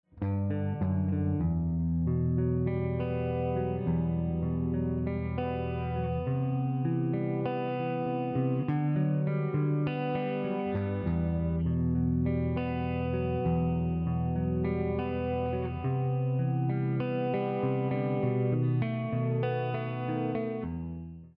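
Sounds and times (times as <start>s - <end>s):
clean guitar: 0.1s - 21.3s.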